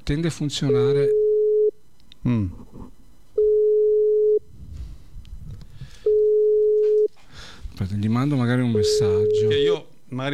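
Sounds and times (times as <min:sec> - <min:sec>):
speech: 0:00.1 - 0:01.2, 0:02.2 - 0:03.0, 0:07.8 - 0:10.3
telephone busy signal during an attempted video call: 0:00.7 - 0:01.7, 0:03.4 - 0:04.4, 0:06.1 - 0:07.1, 0:08.7 - 0:09.7.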